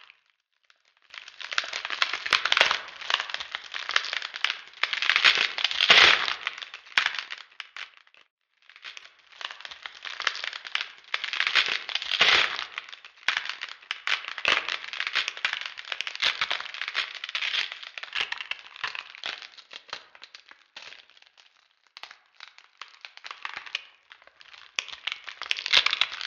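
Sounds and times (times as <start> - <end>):
ice cracking: 1.1 - 8.0, 8.7 - 26.2.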